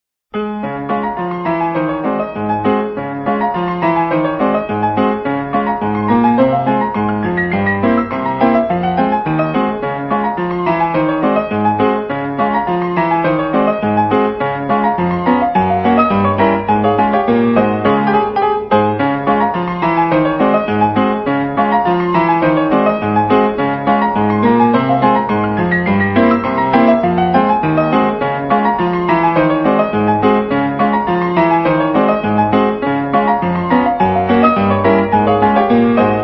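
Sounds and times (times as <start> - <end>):
piano roll ragtime piece: 0.4 - 36.2.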